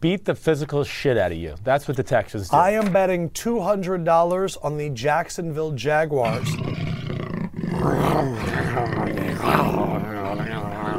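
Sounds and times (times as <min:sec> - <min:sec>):
speech: 0:00.0 - 0:06.9
man imitating a lion's roar: 0:06.2 - 0:10.9.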